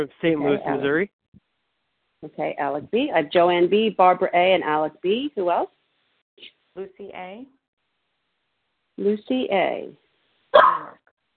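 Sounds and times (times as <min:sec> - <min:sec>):
speech: 0:00.0 - 0:01.2, 0:02.2 - 0:05.8, 0:06.4 - 0:07.6, 0:09.0 - 0:10.9
dog barking: 0:10.6 - 0:11.0.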